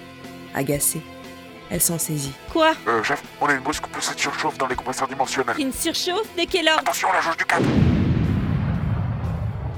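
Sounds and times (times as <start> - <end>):
speech: 0.5 - 7.9
distant explosion reverberating through the corridors of a base: 7.6 - 9.7.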